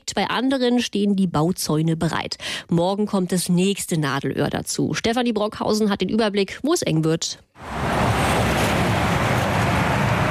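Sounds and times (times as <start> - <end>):
speech: 0.1 - 8.0
road traffic of cars and trucks on a two-lane city ring road: 7.6 - 10.3.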